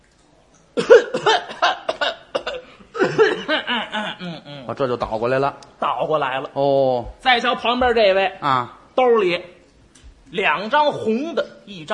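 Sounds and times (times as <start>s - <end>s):
performer faking throaty exaggerated coughs: 0.8s - 4.5s
speech: 4.0s - 9.5s, 10.3s - 11.9s.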